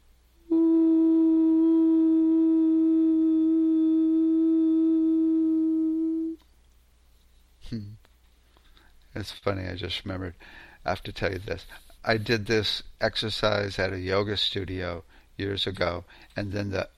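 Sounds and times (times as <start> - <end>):
person humming out loud: 0.4 - 6.4, 7.6 - 8.0
speech: 9.2 - 16.9
soft breath-like noise: 10.4 - 10.9, 16.1 - 16.4.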